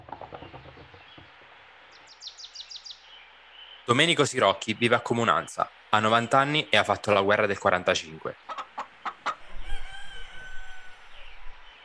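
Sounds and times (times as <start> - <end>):
speech: 3.9 - 8.4
rooster clucking: 8.4 - 11.8
rooster crowing: 9.3 - 11.8.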